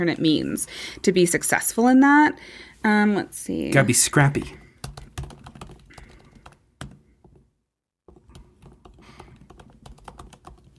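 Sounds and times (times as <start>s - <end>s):
speech: 0.0s - 4.6s
typing on a computer keyboard: 4.7s - 7.4s, 8.1s - 10.7s.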